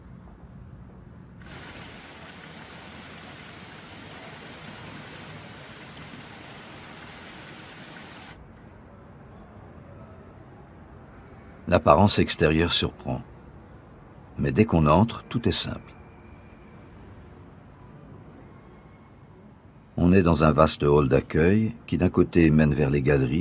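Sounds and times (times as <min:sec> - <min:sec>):
water flowing down a gently sloping cascade beside a foundation building: 0:01.4 - 0:08.4
speech: 0:11.7 - 0:13.3, 0:14.4 - 0:16.0, 0:20.1 - 0:23.3.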